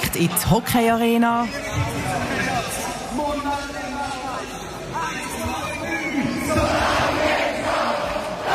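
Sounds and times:
speech: 0:00.1 - 0:03.8
crowd of thousands singing a song inside an arena in Zurich: 0:05.5 - 0:08.5.

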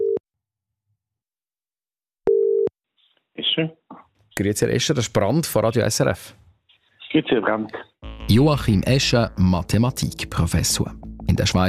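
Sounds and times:
telephone line ringing tone: 0:02.3 - 0:02.7
speech: 0:03.6 - 0:06.4, 0:07.1 - 0:11.6.

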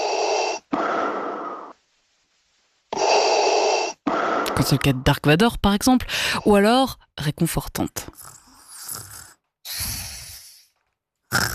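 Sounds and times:
heavy raspy breathing: 0:00.0 - 0:01.8, 0:02.9 - 0:04.9, 0:06.0 - 0:06.5, 0:08.2 - 0:11.5
speech: 0:04.6 - 0:08.4.

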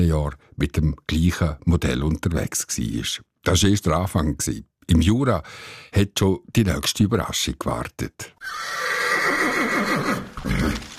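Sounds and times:
speech: 0:00.0 - 0:10.9
horse neighing while pulling a wagon carrying guests in the Jura: 0:08.4 - 0:10.9.

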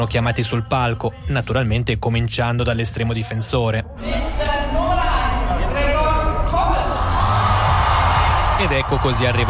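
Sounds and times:
speech: 0:00.0 - 0:04.5, 0:08.6 - 0:09.4
large crowd roaring and cheering in Zurich: 0:04.7 - 0:09.4
crowd applauding players on stage: 0:06.1 - 0:09.4.

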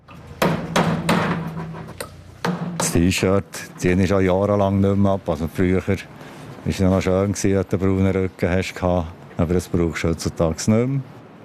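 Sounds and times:
metallic hammer strikes at construction site: 0:00.1 - 0:03.2
speech: 0:02.9 - 0:11.4.

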